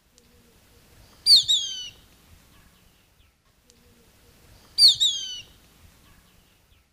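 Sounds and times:
Ictinia plumbea calling: 0:00.2 - 0:03.1, 0:03.7 - 0:06.7.

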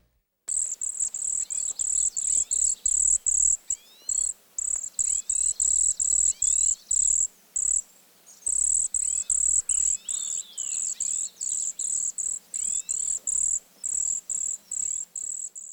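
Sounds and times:
northern forest ambience in Eastern and Central North America: 0:00.5 - 0:15.7.

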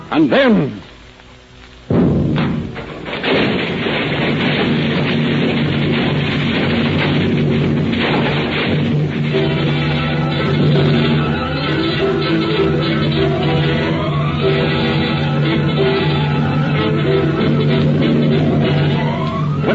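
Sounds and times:
speech: 0:00.1 - 0:00.9
bomb blast blowing up the center of a newspaper building: 0:01.8 - 0:19.7
crashing debris and falling heavy machinery: 0:01.8 - 0:19.7
long heavy rumbling roar after a bomb blast: 0:01.9 - 0:19.7
rising tones: 0:04.4 - 0:19.7.

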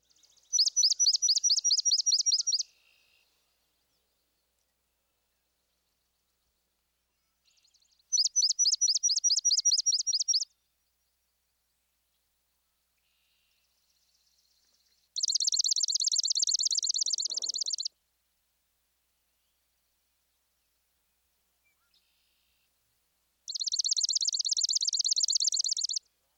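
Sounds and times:
swamp sparrow singing trilled songs: 0:00.0 - 0:02.7, 0:07.5 - 0:11.4, 0:13.7 - 0:17.9, 0:23.5 - 0:26.1.

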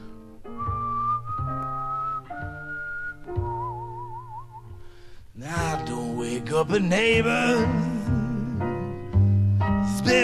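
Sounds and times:
steady instrumental backing with shifting chords: 0:00.0 - 0:10.2
man whistling a tune in long held notes: 0:00.5 - 0:05.2
speech: 0:06.5 - 0:07.9.

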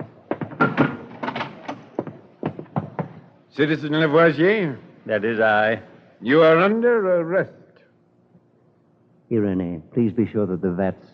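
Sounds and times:
wooden door opening with clunks and rattles from the latch and frame: 0:00.4 - 0:01.9
speech: 0:03.6 - 0:07.6, 0:09.3 - 0:11.1.

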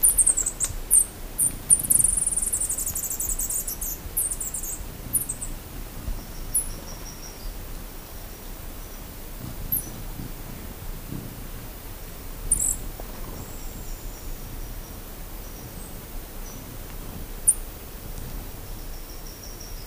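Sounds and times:
velvet-purple coronet calls in Ecuador: 0:00.0 - 0:10.3, 0:12.3 - 0:17.8
low background rumble: 0:00.0 - 0:19.8.

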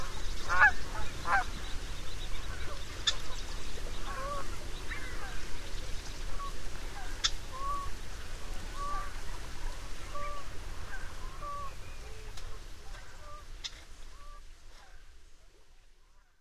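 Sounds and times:
Canada goose honking and clucking in western North America: 0:00.0 - 0:01.6, 0:04.0 - 0:05.4, 0:06.4 - 0:07.9, 0:08.7 - 0:09.2, 0:10.0 - 0:12.3, 0:12.9 - 0:15.0
low noise: 0:00.0 - 0:16.3.

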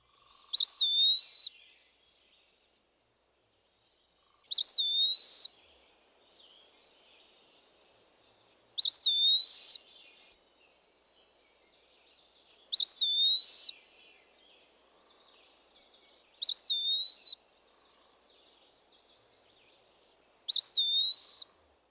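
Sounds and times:
Eastern Wood Pewee singing: 0:00.5 - 0:01.9, 0:04.5 - 0:05.7, 0:08.8 - 0:10.3, 0:12.7 - 0:14.5, 0:16.4 - 0:17.5, 0:20.5 - 0:21.6.

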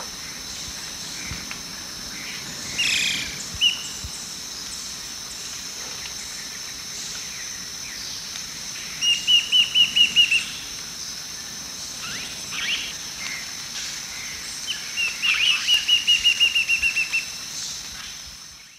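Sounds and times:
high insect drone: 0:00.0 - 0:18.7
Lineated woodcreeper song in the eastern lowlands of South America: 0:09.0 - 0:10.6, 0:12.0 - 0:13.0, 0:14.7 - 0:17.4.

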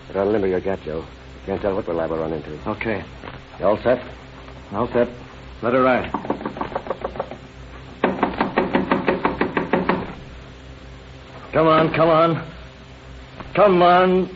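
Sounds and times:
speech: 0:00.1 - 0:06.5, 0:11.6 - 0:12.6, 0:13.6 - 0:14.3
heavy pounding on a door: 0:06.1 - 0:07.4, 0:08.0 - 0:10.2.

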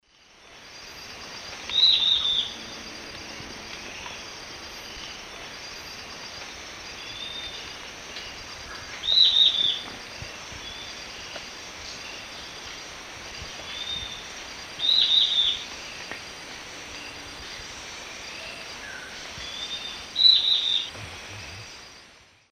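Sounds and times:
Lathrotriccus euleri song or call in the Eastern Lowlands of South America: 0:01.3 - 0:06.0, 0:06.9 - 0:09.9, 0:13.6 - 0:16.0, 0:16.7 - 0:21.9.

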